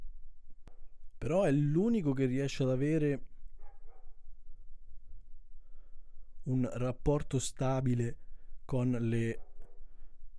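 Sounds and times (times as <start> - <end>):
speech: 1.2 - 3.3, 6.5 - 9.4
dogs barking: 3.6 - 4.2, 9.4 - 9.8.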